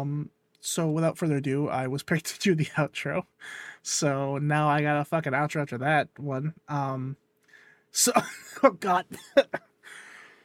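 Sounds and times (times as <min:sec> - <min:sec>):
speech: 0:00.0 - 0:07.2, 0:07.9 - 0:10.0
breathy exhale: 0:03.4 - 0:03.8, 0:07.5 - 0:07.9, 0:09.9 - 0:10.4
person coughing fit: 0:08.1 - 0:09.7.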